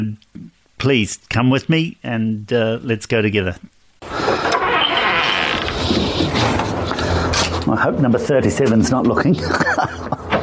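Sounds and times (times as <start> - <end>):
speech: 0.8 - 3.7, 7.7 - 9.9
house front door hinges creaking: 4.2 - 7.7
laughter: 9.2 - 10.4.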